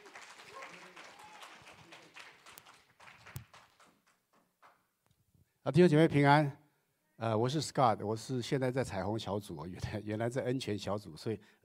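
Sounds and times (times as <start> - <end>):
audience applause welcoming a speaker: 0.0 - 4.2
speech: 5.7 - 6.6, 7.2 - 11.6.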